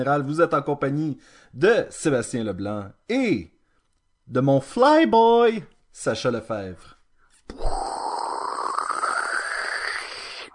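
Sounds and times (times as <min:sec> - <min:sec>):
speech: 0:00.0 - 0:03.5, 0:04.3 - 0:07.8
person imitating a rocket with a breathy roar: 0:07.5 - 0:10.5.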